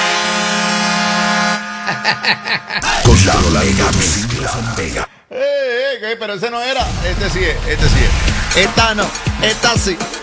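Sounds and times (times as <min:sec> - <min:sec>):
air horn sound effect in a DJ mix: 0:00.0 - 0:01.8
laughter: 0:01.8 - 0:03.9
speech: 0:02.1 - 0:10.2.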